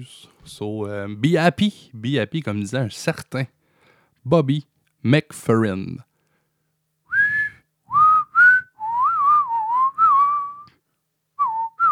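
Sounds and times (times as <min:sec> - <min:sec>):
speech: 0:00.0 - 0:03.6, 0:04.2 - 0:06.1
person whistling a melody: 0:07.1 - 0:10.8, 0:11.4 - 0:11.8.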